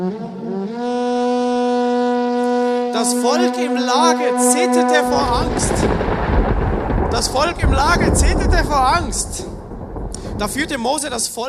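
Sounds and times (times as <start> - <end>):
loud sustained trumpet blast: 0.0 - 9.6
speech: 3.0 - 6.1, 7.1 - 9.5, 10.4 - 11.4
thunder over Mount Sinai: 5.0 - 11.4.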